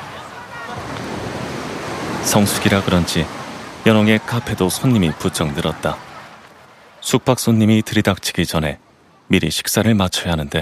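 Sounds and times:
laughter: 0.0s - 7.4s
ocean surf waves breaking on a shore: 0.0s - 9.4s
speech: 2.2s - 6.1s, 7.0s - 10.6s.

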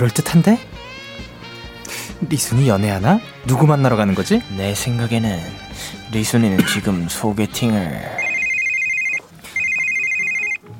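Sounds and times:
speech: 0.0s - 0.9s, 2.2s - 8.3s
phone ringing with an incoming call in a steady electronic trill: 8.2s - 10.7s.

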